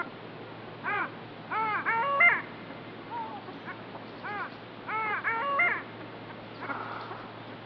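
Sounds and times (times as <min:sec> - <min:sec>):
long-tailed duck nasal yodelling calls: 0:00.8 - 0:02.5, 0:03.1 - 0:07.3.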